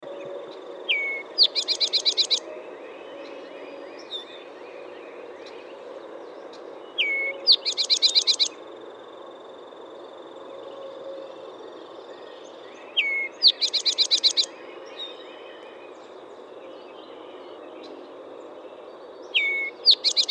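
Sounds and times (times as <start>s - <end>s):
towhee calling: 0.8s - 2.5s, 7.0s - 8.6s, 13.0s - 14.6s, 19.3s - 20.2s.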